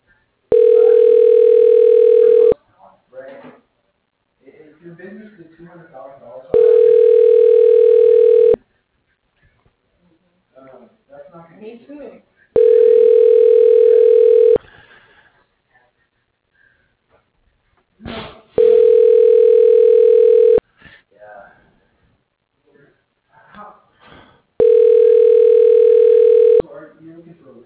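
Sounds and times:
telephone tones while dialing an office extension: 0:00.5 - 0:02.6, 0:06.6 - 0:08.6, 0:12.6 - 0:14.6, 0:18.6 - 0:20.6, 0:24.6 - 0:26.6.

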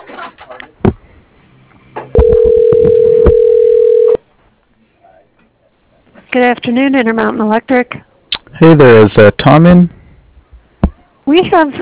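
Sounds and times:
telephone ringback tone during call transfer: 0:02.2 - 0:04.2
speech: 0:06.4 - 0:10.0, 0:11.3 - 0:11.8.

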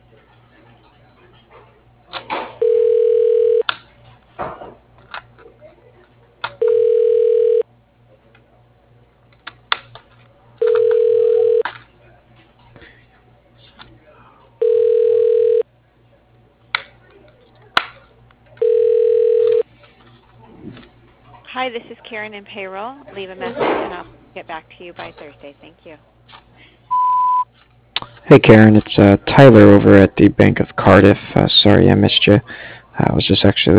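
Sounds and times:
telephone line ringing while a call is transferred to voicemail: 0:02.6 - 0:03.6, 0:06.6 - 0:07.6, 0:10.6 - 0:11.6, 0:14.6 - 0:15.6, 0:18.6 - 0:19.6
speech: 0:21.7 - 0:26.1, 0:28.3 - 0:33.7.

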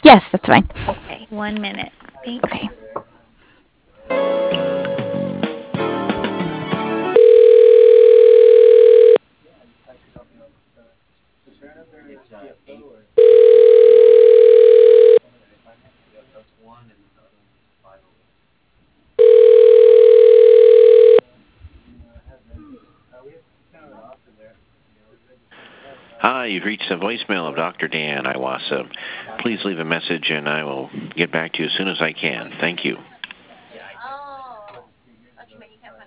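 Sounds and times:
speech: 0:00.0 - 0:02.7, 0:27.0 - 0:33.1
telephone dialing tones: 0:07.2 - 0:09.2, 0:13.2 - 0:15.2, 0:19.2 - 0:21.2.

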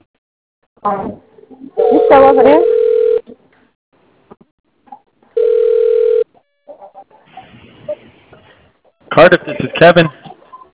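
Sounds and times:
speech: 0:00.8 - 0:02.8, 0:09.2 - 0:10.2
telephone tone from a malfunctioning phone: 0:01.8 - 0:03.2, 0:05.4 - 0:06.3.

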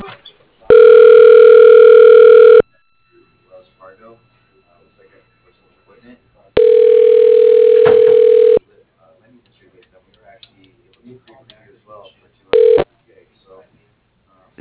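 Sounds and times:
telephone line tones while a call is transferred to voicemail: 0:00.7 - 0:02.7, 0:06.6 - 0:08.6, 0:12.6 - 0:12.9.

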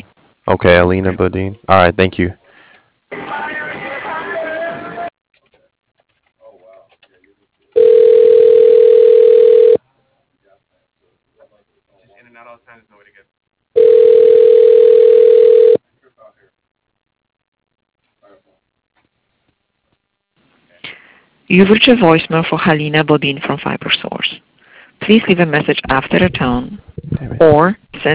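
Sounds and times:
speech: 0:00.0 - 0:02.4, 0:21.5 - 0:24.4, 0:25.1 - 0:28.1
phone line ringing tone while a call is transferred: 0:07.8 - 0:09.8, 0:13.8 - 0:15.8.

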